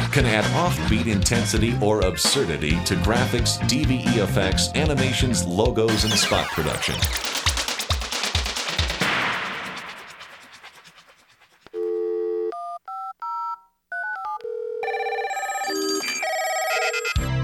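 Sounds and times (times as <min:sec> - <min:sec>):
speech: 0:00.2 - 0:07.3
harsh crackling noise: 0:05.9 - 0:11.8
telephone beeps and keypad-style tone pairs: 0:11.8 - 0:17.2.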